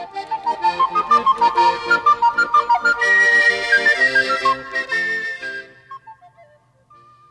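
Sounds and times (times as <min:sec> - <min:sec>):
rhythmic musical backing: 0:00.0 - 0:05.6
farmer whistling a cheerful tune while walking down the road: 0:00.3 - 0:07.2.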